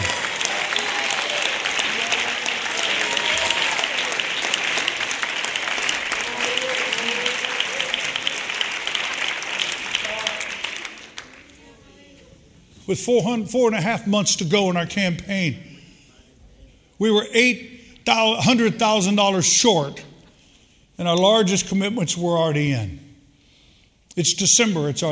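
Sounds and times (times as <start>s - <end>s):
audience applauding: 0.0s - 11.6s
speech: 12.9s - 15.7s, 17.0s - 20.1s, 21.0s - 23.0s, 24.2s - 25.0s.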